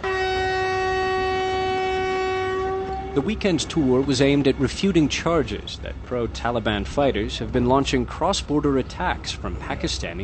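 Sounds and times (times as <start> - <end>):
vintage train whistle: 0.0 - 3.3
vintage train rumbling on rails: 0.0 - 10.2
speech: 3.2 - 10.2.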